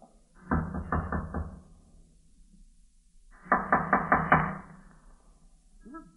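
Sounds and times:
firm knocking on a wooden door in an old tenement: 0.4s - 1.6s, 3.5s - 4.6s.

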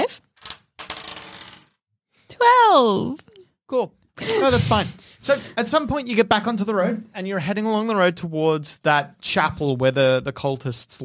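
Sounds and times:
dice rolled for an encounter check in a tabletop role-playing game: 0.3s - 1.8s
speech: 2.4s - 11.0s.

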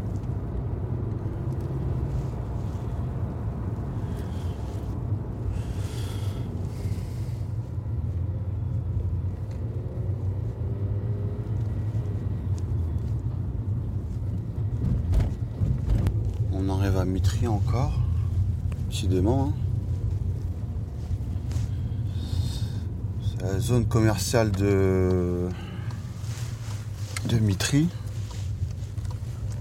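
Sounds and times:
car engine and road rumble accelerating on a motorway: 0.0s - 29.5s
speech: 17.1s - 18.0s, 18.9s - 19.6s, 23.4s - 25.6s, 27.3s - 28.0s.

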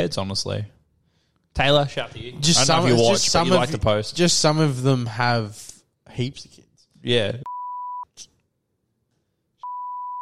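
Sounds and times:
speech: 0.0s - 0.8s, 1.6s - 7.5s
loud censor bleep tone over a name: 7.5s - 8.1s, 9.6s - 10.1s.

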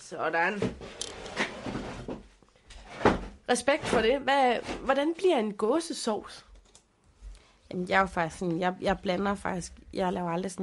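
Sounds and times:
speech: 0.1s - 1.0s, 3.5s - 6.5s, 7.7s - 10.6s
gaming chair knocks and clunks while being swapped out: 0.6s - 4.9s.

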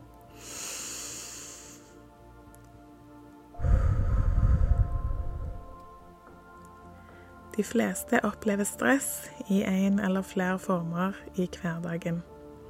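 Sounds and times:
deep breath into the belly: 0.3s - 2.0s, 3.6s - 5.8s
speech: 7.6s - 12.3s.

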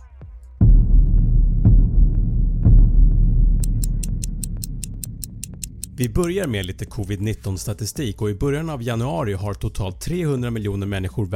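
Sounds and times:
deep throbbing low rumbling pulse: 0.6s - 7.6s
clock ticking crisp and bright: 3.6s - 7.0s
speech: 6.0s - 11.3s.

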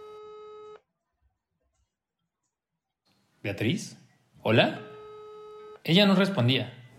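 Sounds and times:
electronic telephone ringing tone: 0.0s - 0.8s, 4.6s - 5.8s
faint noise: 1.0s - 6.9s
speech: 3.4s - 4.9s, 5.8s - 6.8s.

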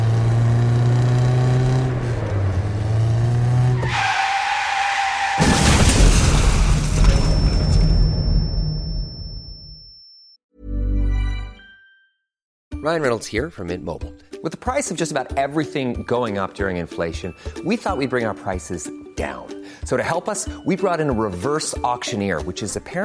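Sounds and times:
car engine roaring at high speed on a curve: 0.0s - 5.4s
car tyres squealing in a skid: 0.6s - 7.0s
car crashing in a crunching impact: 5.0s - 9.0s
thud: 5.4s - 9.2s
speech: 12.9s - 23.0s.

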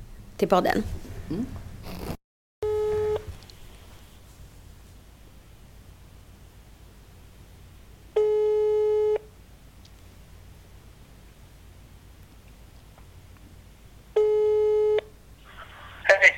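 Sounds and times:
speech: 0.4s - 1.6s
outgoing call telephone ringback tone: 2.6s - 3.3s, 8.2s - 9.2s, 14.2s - 15.1s
low hiss: 2.7s - 16.3s.

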